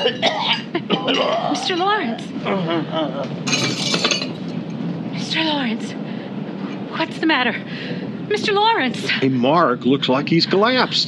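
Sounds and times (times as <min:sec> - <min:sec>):
man coughing violently in harsh repeated fits: 0:00.0 - 0:01.6
speech: 0:00.0 - 0:04.1, 0:05.3 - 0:06.1, 0:07.0 - 0:11.0
brief glassy clatter: 0:03.5 - 0:04.8.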